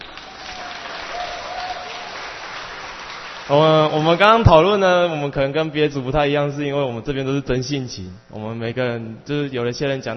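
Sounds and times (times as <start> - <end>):
audience applause at a sharing session: 0.0 - 4.7
speech: 3.5 - 10.1.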